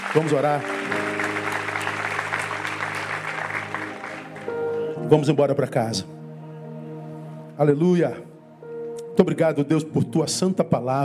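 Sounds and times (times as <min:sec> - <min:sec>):
church audience applauding during a service: 0:00.0 - 0:05.3
sustained organ or keyboard chord: 0:00.0 - 0:11.0
speech: 0:00.1 - 0:01.0, 0:05.1 - 0:06.2, 0:07.6 - 0:08.3, 0:09.2 - 0:11.0.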